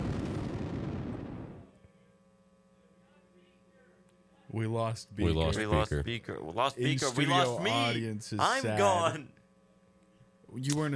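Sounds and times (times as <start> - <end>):
dense barrage of booming explosions: 0.0 - 1.7
speech: 4.5 - 9.4, 10.5 - 10.9.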